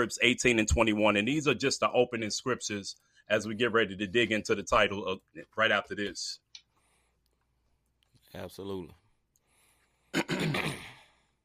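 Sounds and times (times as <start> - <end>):
speech: 0.0 - 6.4, 8.3 - 9.0
two people clearing their throats at the same time: 10.2 - 11.1.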